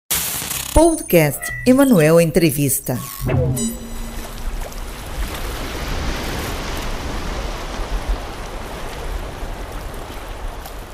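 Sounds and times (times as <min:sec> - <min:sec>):
speech: 0:00.8 - 0:03.8
brief tonal chime: 0:03.0 - 0:05.2
sea waves rushing: 0:03.6 - 0:10.9.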